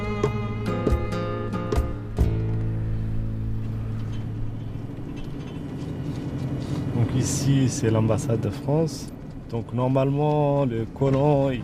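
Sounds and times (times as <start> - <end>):
car engine drone heard from inside on city streets: 0.0 - 11.6
road rumble: 0.0 - 11.6
knocks and rattles inside a car: 3.8 - 6.5
speech: 7.2 - 11.6.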